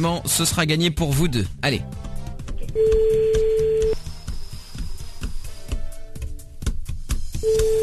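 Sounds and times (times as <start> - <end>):
speech: 0.0 - 2.1, 2.8 - 3.3
telephone ringback tone from a radio phone-in call: 2.8 - 4.0, 7.4 - 7.8.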